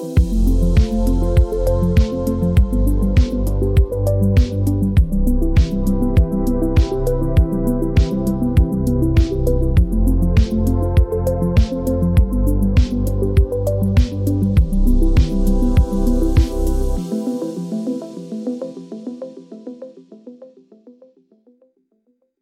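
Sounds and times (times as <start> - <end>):
melancholic retro pulse: 0.2 - 19.5.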